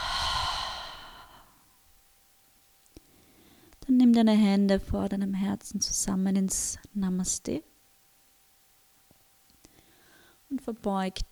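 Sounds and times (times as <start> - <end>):
deep breath exhaled through the mouth at the end of a meditation: 0.0 - 1.6
speech: 4.0 - 7.7, 10.6 - 11.2.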